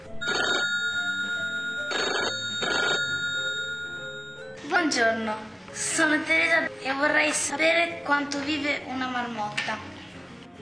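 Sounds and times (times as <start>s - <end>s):
telephone ringing for an incoming call: 0.2s - 4.6s
speech: 5.0s - 9.9s.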